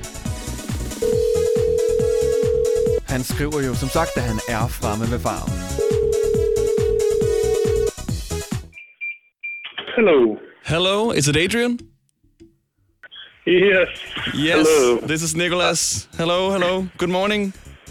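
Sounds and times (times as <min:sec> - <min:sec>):
busy music: 0:00.0 - 0:08.7, 0:11.3 - 0:17.8
ringback tone of an outgoing phone call: 0:01.0 - 0:03.0, 0:05.7 - 0:08.0
speech: 0:03.4 - 0:05.8, 0:10.0 - 0:11.9, 0:13.5 - 0:17.6.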